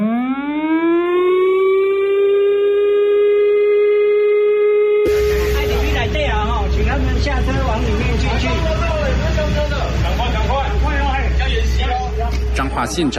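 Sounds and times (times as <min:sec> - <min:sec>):
air raid drill siren broadcast: 0:00.0 - 0:13.1
traffic noise: 0:05.1 - 0:13.1
speech: 0:12.9 - 0:13.1.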